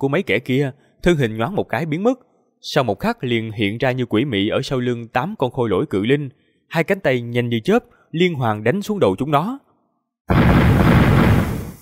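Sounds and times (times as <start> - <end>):
speech: 0.0 - 9.6, 10.3 - 11.0
deep dull rumbling explosion: 10.3 - 11.8.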